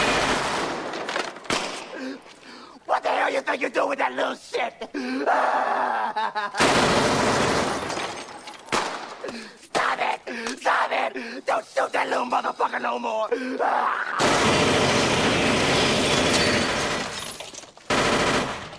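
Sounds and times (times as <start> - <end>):
loud gunshots in a tense armed standoff: 0.0 - 2.0, 6.6 - 9.2, 14.2 - 17.1, 17.9 - 18.7
speech: 3.4 - 7.1, 9.3 - 15.0
laughter: 4.6 - 6.8.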